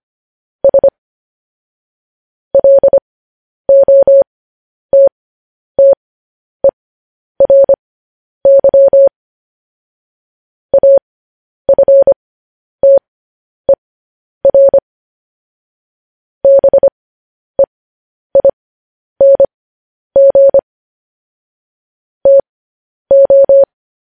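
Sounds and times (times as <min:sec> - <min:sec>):
Morse code tones beeping: 0:00.6 - 0:00.9, 0:02.6 - 0:03.0, 0:03.7 - 0:04.2, 0:04.9 - 0:05.1, 0:07.4 - 0:07.8, 0:08.5 - 0:09.1, 0:10.7 - 0:11.0, 0:11.7 - 0:12.2, 0:14.4 - 0:14.8, 0:16.4 - 0:16.9, 0:18.4 - 0:18.6, 0:19.2 - 0:19.5, 0:20.2 - 0:20.6, 0:22.2 - 0:22.4, 0:23.1 - 0:23.7.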